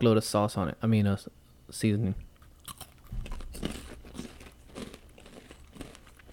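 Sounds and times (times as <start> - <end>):
speech: 0.0 - 2.3
crunching a spicy heavily seasoned snack: 2.4 - 6.3.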